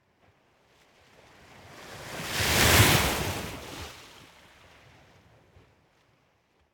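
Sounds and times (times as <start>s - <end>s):
medium ocean surf with faster waves lapping on the coast: 1.7s - 4.4s.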